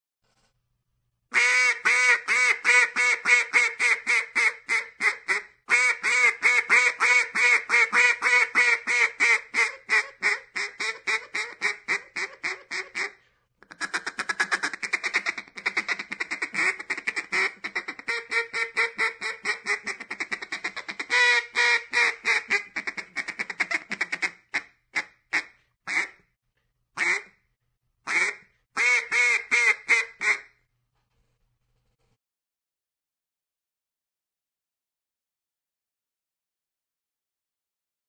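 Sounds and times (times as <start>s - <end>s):
duck: 1.4s - 26.2s, 27.0s - 27.4s, 28.1s - 30.6s.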